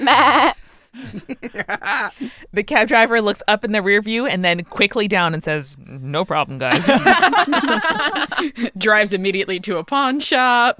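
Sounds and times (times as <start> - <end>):
person imitating a goat bleat: 0.0 - 0.6
laughter: 0.0 - 3.3, 6.5 - 8.8
speech: 1.1 - 10.7.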